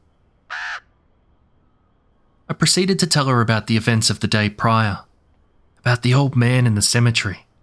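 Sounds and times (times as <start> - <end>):
raven cawing harshly: 0.4 - 1.1
speech: 2.5 - 5.1, 5.8 - 7.5.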